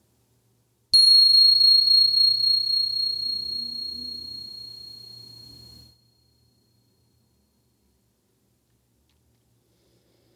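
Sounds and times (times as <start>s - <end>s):
faint low hum: 1.0s - 5.9s
single meditation bell ringing: 1.0s - 5.9s.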